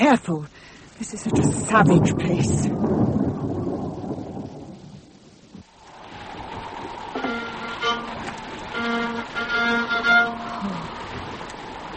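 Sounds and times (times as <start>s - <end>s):
speech: 0.0s - 3.3s
roaring storm wind: 0.9s - 11.9s
droning tonal notes: 7.1s - 11.1s.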